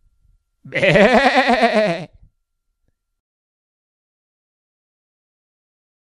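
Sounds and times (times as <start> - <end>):
sheep bleating: 0.7 - 2.1.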